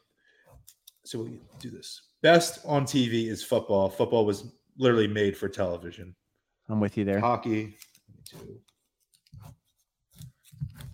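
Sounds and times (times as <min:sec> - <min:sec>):
speech: 0:01.1 - 0:08.7
pen scratching across paper: 0:09.2 - 0:10.9.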